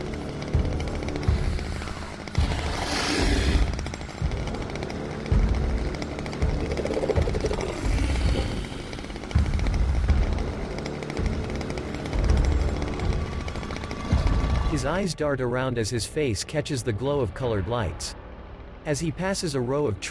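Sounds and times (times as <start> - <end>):
chainsaw engine running while a man moves through trees: 0.0 - 14.9
speech: 14.8 - 18.2, 18.8 - 20.1.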